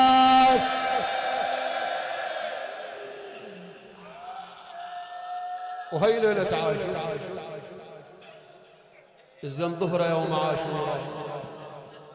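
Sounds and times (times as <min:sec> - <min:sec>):
mourning crowd giving a loud resounding shout in unison: 0:00.2 - 0:05.8
speech: 0:05.9 - 0:07.4, 0:09.4 - 0:11.5.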